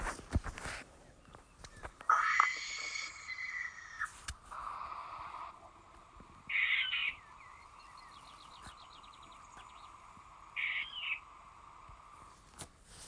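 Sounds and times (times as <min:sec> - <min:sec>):
faint chirps: 0:01.1 - 0:12.5
barn owl screeching hisses: 0:02.1 - 0:05.8, 0:06.5 - 0:07.2, 0:10.5 - 0:11.3.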